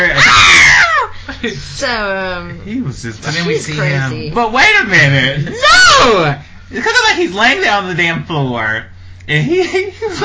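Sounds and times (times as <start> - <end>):
woman screaming after shooting a man: 0.0 - 1.2, 5.5 - 6.3
speech: 1.4 - 10.2.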